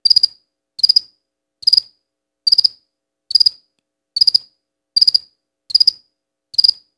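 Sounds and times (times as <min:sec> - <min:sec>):
cricket chirping: 0:00.0 - 0:06.9.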